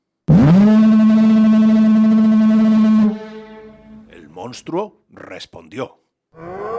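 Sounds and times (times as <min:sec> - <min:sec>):
lighthouse foghorn blast: 0:00.3 - 0:04.1
speech: 0:04.5 - 0:06.5.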